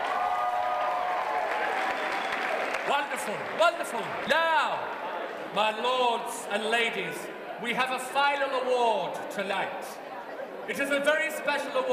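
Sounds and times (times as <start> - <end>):
room full of people clapping: 0.0 - 4.2
speech: 2.9 - 10.0, 10.7 - 11.9.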